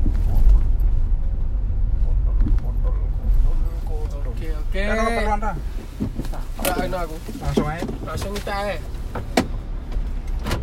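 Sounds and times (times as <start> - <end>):
steady low rumble inside a car cabin: 0.0 - 10.6
speech: 4.9 - 5.8, 6.6 - 9.4.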